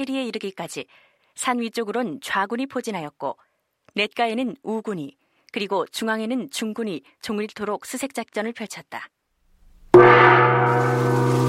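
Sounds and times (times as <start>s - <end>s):
speech: 0.0s - 9.2s
single loud gong strike signalling troops to halt: 10.0s - 11.4s.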